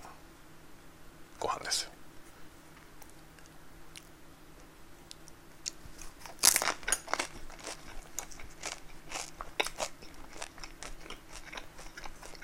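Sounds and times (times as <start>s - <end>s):
speech: 1.4s - 2.0s
person eating plain toasted bread: 5.1s - 12.4s.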